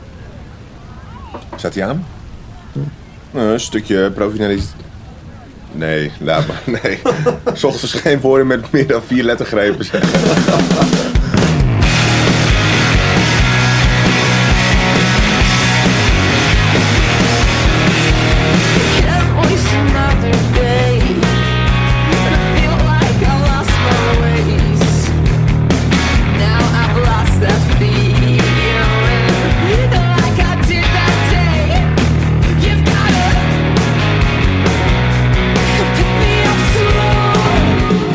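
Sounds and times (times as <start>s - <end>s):
speech: 1.4s - 2.2s, 2.8s - 4.8s, 5.7s - 11.0s
laughter: 6.2s - 11.7s
rock band recording with driving drums and distorted guitars: 10.0s - 38.1s.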